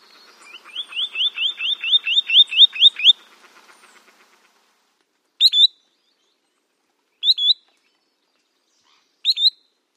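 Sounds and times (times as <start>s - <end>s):
spotted sandpiper singing high rising whistled notes: 0.4s - 3.2s, 5.4s - 6.4s, 7.2s - 8.0s, 8.8s - 9.8s.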